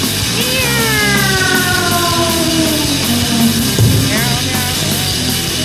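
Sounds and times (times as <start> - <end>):
loud dense wall of chaotic noise: 0.2 - 5.5
cat yowling while being catapulted: 0.4 - 4.6
brief wavering squeal: 0.5 - 5.3.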